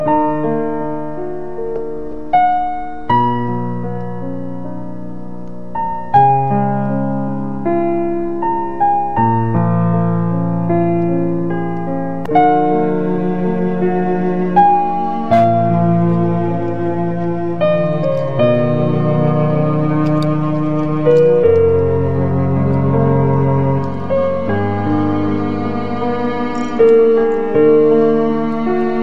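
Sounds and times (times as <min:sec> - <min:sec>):
romantic piano music: 0:00.0 - 0:29.0.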